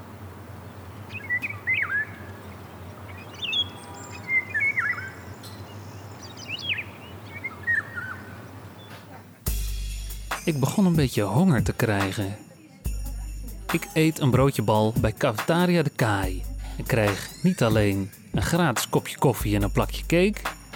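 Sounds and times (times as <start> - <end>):
golden oriole calling with fluting whistled phrases: 0.0 - 9.6
speech: 10.5 - 12.5, 13.7 - 20.6.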